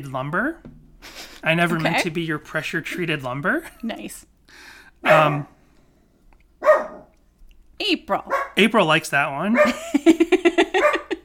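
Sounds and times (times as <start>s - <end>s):
speech: 0.0s - 5.6s, 7.9s - 10.4s
laughter: 1.1s - 2.2s, 9.7s - 11.2s
puppy barking and yipping: 5.0s - 5.5s, 6.6s - 7.1s, 8.2s - 8.6s, 9.6s - 9.8s, 10.7s - 11.2s.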